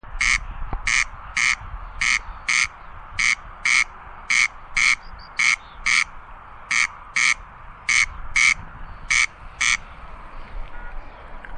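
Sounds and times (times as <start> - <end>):
corncrake call: 0.2 - 9.8.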